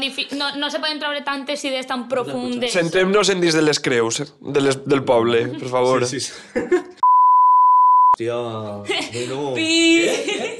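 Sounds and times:
speech: 0.0s - 7.0s, 8.2s - 10.5s
laughter and chuckling voices: 5.5s - 7.0s, 8.8s - 10.5s
loud steady censor beep: 7.0s - 8.2s.

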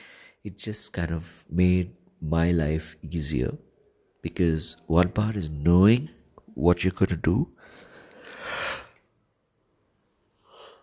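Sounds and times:
speech: 0.4s - 7.8s
soft breath: 7.6s - 9.1s, 10.1s - 10.8s.

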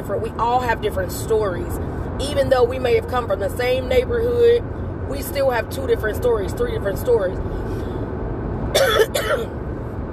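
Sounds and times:
low steady rumble: 0.0s - 10.1s
speech: 0.1s - 7.9s, 8.9s - 9.6s
person coughing: 8.8s - 9.6s.

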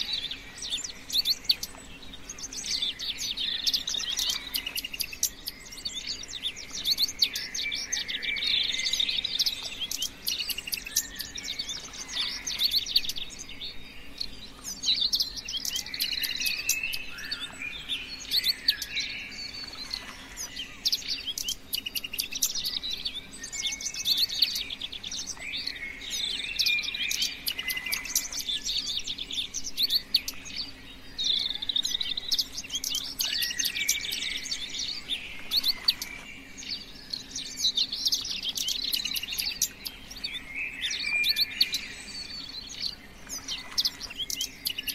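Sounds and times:
many birds chirping and twittering: 0.0s - 44.9s.

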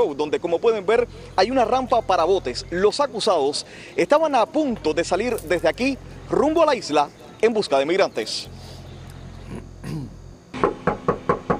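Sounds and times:
speech: 0.0s - 8.7s
voices: 0.0s - 10.2s
firm knocking on an apartment door: 10.6s - 11.5s.

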